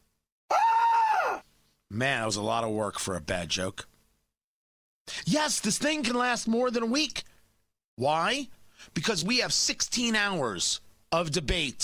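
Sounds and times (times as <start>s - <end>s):
person screaming: 0.5s - 1.4s
speech: 1.9s - 3.9s, 5.1s - 7.3s, 8.0s - 11.8s.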